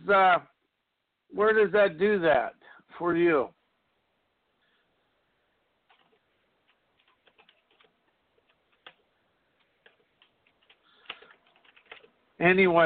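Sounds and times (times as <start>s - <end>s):
speech: 0.1s - 0.5s, 1.3s - 3.6s, 12.4s - 12.8s
typing on a keyboard: 5.9s - 12.2s.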